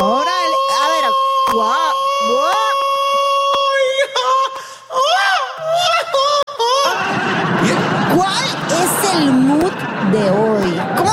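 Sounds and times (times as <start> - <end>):
man letting out a loud drawn-out yell with whoops: 0.0 - 7.0
laughter: 6.2 - 11.1.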